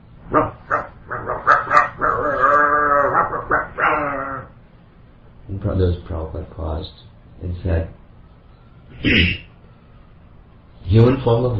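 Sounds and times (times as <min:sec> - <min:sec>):
dog barking and howling outside: 0:00.2 - 0:04.6
speech: 0:05.6 - 0:08.0, 0:09.0 - 0:09.4, 0:11.0 - 0:11.5.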